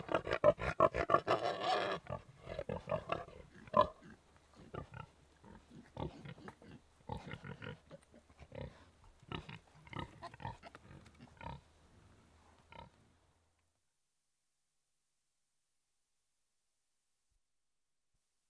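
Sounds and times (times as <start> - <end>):
pigs grunting and snorting: 0.0 - 11.7.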